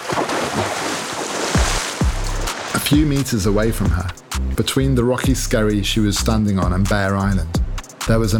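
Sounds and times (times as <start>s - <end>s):
heavy low splashes in the sea: 0.0s - 4.0s
steady rushing sea water and waves: 0.0s - 5.2s
speech: 2.9s - 8.3s.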